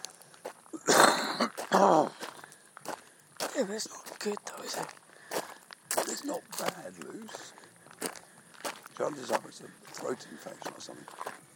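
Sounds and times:
harsh raspy coughs: 0.8s - 2.2s
quiet breathing: 2.1s - 3.5s, 5.0s - 5.8s, 7.3s - 8.8s, 9.5s - 11.5s
speech: 3.6s - 5.0s, 6.2s - 7.6s, 9.0s - 11.5s.

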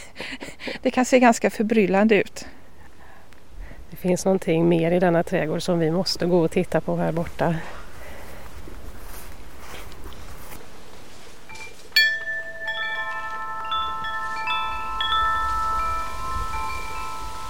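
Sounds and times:
speech: 0.8s - 2.6s, 4.0s - 7.8s
wind chime ringing in the breeze: 11.5s - 17.4s.

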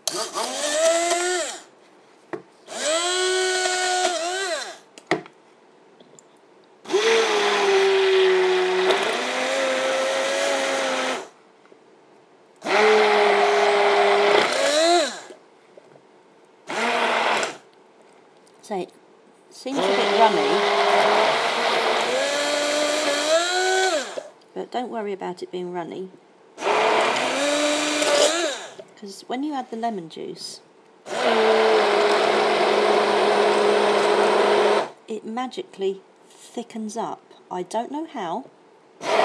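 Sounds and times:
electric stick blender whirring while mixing ingredients in a bowl: 0.0s - 1.7s, 2.7s - 4.9s, 6.9s - 11.4s, 12.6s - 15.4s, 16.7s - 17.7s, 19.7s - 24.3s, 26.6s - 28.8s, 31.1s - 35.0s, 39.0s - 39.2s
speech: 25.0s - 26.2s, 29.0s - 31.5s, 35.1s - 39.2s.

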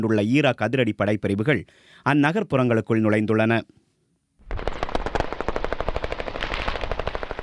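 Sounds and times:
speech: 0.0s - 3.8s
rifle shots in combat in Mosul Iraq: 4.4s - 7.4s
sustained automatic machine gun fire in combat in Mosul Iraq: 4.5s - 7.4s.

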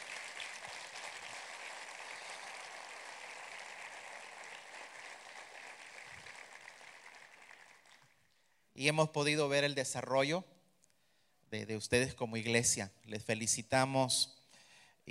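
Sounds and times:
large church audience applauding pastors: 0.0s - 8.3s
speech: 8.8s - 10.5s, 11.5s - 14.4s.

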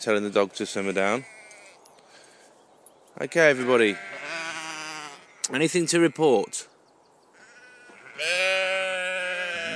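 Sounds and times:
speech: 0.0s - 1.4s, 3.2s - 4.2s, 5.5s - 6.7s, 8.2s - 8.5s
lamb bleating: 0.9s - 1.8s, 3.3s - 6.6s, 7.4s - 9.7s.

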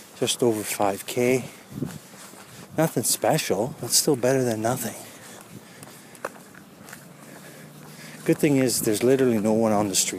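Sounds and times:
footsteps of a brisk walk along an empty street: 0.0s - 10.1s
speech: 0.2s - 2.0s, 2.8s - 5.1s, 8.3s - 10.1s.

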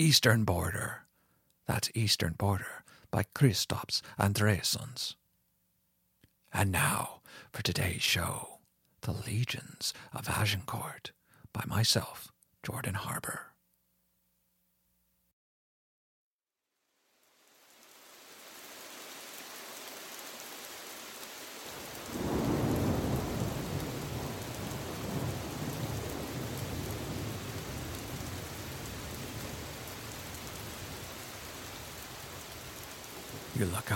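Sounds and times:
speech: 0.0s - 1.0s, 1.7s - 5.2s, 6.5s - 13.5s, 33.6s - 33.9s
steady heavy rain: 17.0s - 33.9s
deep roll of thunder: 22.0s - 31.2s.

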